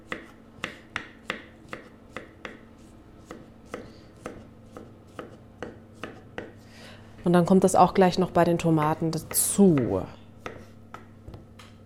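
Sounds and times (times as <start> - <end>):
knife chopping zucchini flesh into small pieces: 0.0 - 6.6, 9.3 - 11.5
speech: 7.2 - 10.2.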